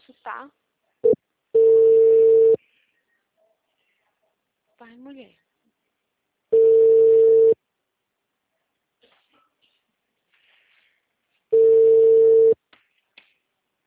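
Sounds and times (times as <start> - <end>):
speech: 0.3 - 0.6, 4.8 - 5.4
telephone busy signal: 1.6 - 2.6, 6.6 - 7.6, 11.6 - 12.6.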